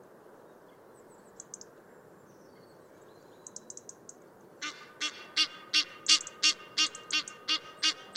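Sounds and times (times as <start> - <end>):
Egyptian goose calling: 4.6 - 8.1.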